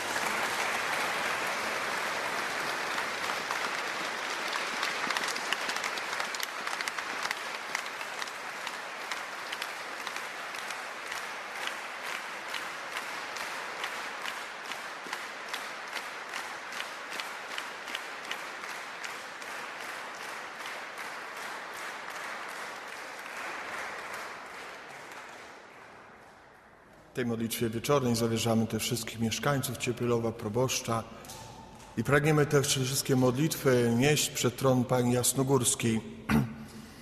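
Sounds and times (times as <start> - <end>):
crowd of pilgrims applauding: 0.0 - 28.9
speech: 27.2 - 31.4, 32.0 - 36.5.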